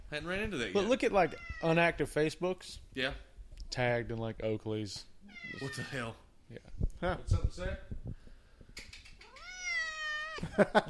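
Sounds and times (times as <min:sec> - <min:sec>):
speech: 0:00.1 - 0:08.2, 0:10.4 - 0:10.8
cat meowing: 0:01.1 - 0:01.8, 0:05.2 - 0:06.1, 0:09.2 - 0:10.4.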